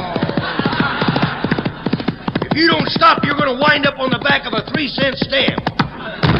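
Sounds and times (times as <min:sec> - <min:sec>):
horse hooves clip-clopping: 0:00.0 - 0:06.3
laughter: 0:00.0 - 0:06.3
speech: 0:02.6 - 0:05.8.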